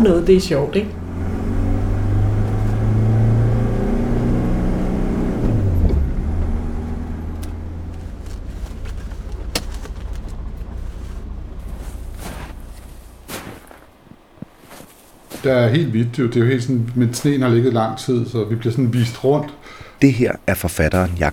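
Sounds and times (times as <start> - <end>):
speech: 0.0 - 1.0, 15.4 - 21.3
car engine droning on a motorway: 0.0 - 21.3
road rumble of a car on a motorway: 0.0 - 21.3.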